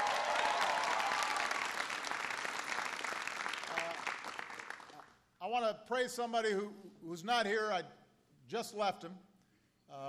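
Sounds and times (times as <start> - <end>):
crowd applauding: 0.0 - 5.1
speech: 5.5 - 9.3, 9.9 - 10.0.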